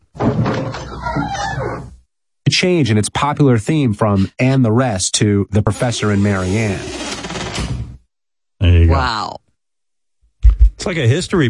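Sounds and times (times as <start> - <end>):
door opening with a creaky groan: 0.2 - 2.0, 6.4 - 8.0
speech: 2.6 - 7.8, 8.6 - 9.4, 10.8 - 11.4.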